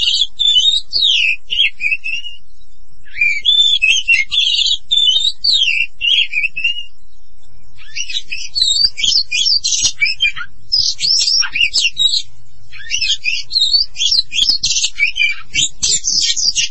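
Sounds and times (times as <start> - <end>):
Oriental magpie-robin singing: 0.0 - 2.4, 3.0 - 6.9, 7.8 - 16.6.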